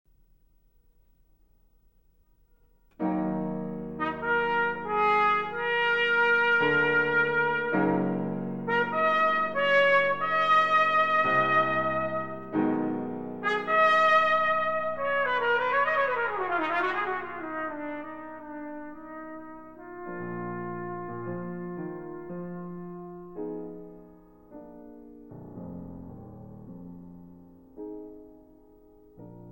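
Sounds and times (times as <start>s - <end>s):
piano: 0.1s - 29.5s
trumpet: 3.0s - 24.7s.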